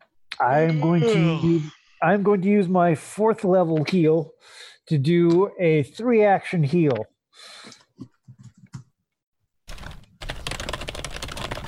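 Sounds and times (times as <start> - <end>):
speech: 0.4 - 8.1
typing on a computer keyboard: 9.7 - 11.6.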